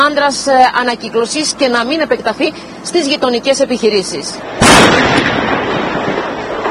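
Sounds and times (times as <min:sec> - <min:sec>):
speech: 0:00.1 - 0:05.6
propane cylinders exploding in a fire: 0:04.5 - 0:06.7.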